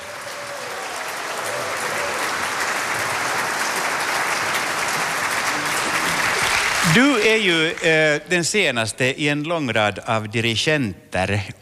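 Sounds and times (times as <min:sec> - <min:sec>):
large audience applause: 0:00.0 - 0:08.2
speech: 0:06.9 - 0:11.5.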